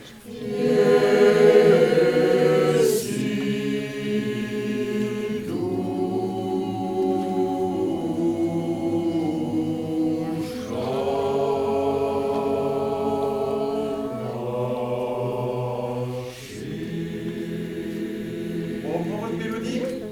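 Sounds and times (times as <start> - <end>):
choir of tenors, basses and altos singing: 0.0 - 20.0.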